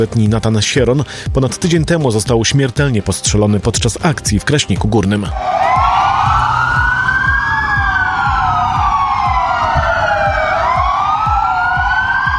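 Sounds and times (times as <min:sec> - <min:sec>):
speech: 0:00.0 - 0:05.8
faint rhythmic thumps: 0:04.3 - 0:12.3
police car sirens wailing in tribute: 0:05.3 - 0:12.3.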